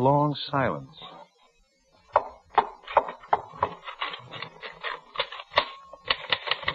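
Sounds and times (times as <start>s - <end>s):
speech: 0.0s - 1.2s
mechanical typewriter keys clacking: 3.8s - 6.7s.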